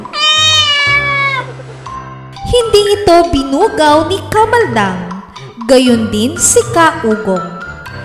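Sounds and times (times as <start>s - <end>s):
cat meowing: 0.0s - 1.5s
speech: 2.7s - 5.1s, 5.7s - 7.6s.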